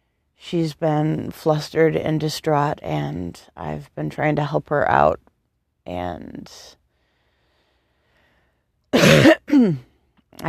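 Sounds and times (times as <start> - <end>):
speech: 0.5 - 6.8, 8.9 - 10.4
person with congested sinuses clearing throat: 9.0 - 9.8
person with congested sinuses coughing: 9.0 - 9.9.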